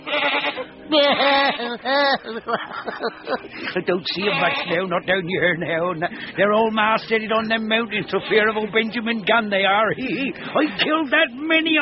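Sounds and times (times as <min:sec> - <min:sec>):
goat bleating: 0:00.0 - 0:02.4, 0:04.1 - 0:05.0, 0:08.0 - 0:09.0
laughter: 0:00.9 - 0:04.8, 0:09.8 - 0:11.0
speech: 0:00.9 - 0:11.8.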